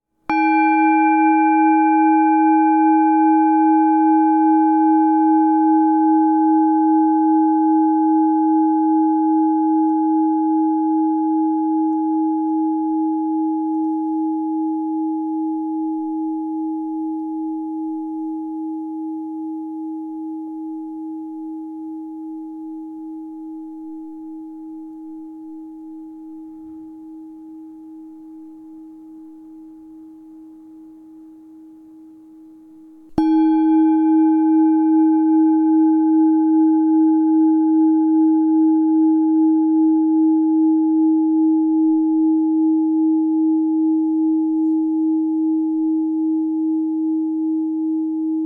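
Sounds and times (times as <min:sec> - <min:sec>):
singing bowl struck: 0:00.3 - 0:30.8, 0:33.0 - 0:48.3.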